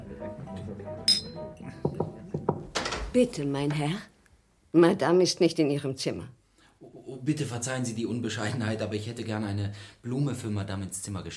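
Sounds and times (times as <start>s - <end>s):
glasses clinking in a toast: 1.1s - 1.5s
speech: 3.1s - 4.1s, 4.7s - 6.4s, 7.1s - 11.3s.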